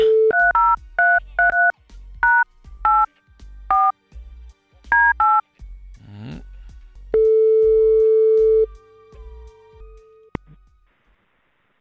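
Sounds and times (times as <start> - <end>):
phone ringing a call: 0.0 - 3.1, 5.0 - 5.4, 7.2 - 8.7
phone touch-tone dialing beeps: 0.0 - 3.1, 5.0 - 5.4, 7.2 - 8.7.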